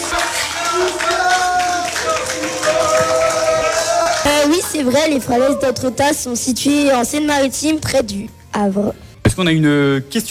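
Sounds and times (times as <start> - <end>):
studio audience applauding a quiz contestant's correct answer: 0.0 - 5.5
speech: 4.5 - 10.2.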